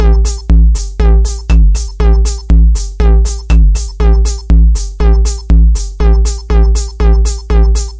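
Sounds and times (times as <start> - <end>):
bouncy drum machine beat: 0.0 - 7.9.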